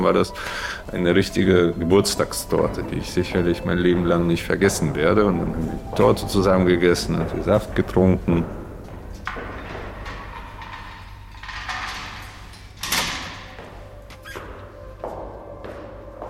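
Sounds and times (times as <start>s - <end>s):
speech: 0.0s - 8.6s
low hum: 0.0s - 16.2s
prison cell door being unlocked: 9.1s - 14.8s.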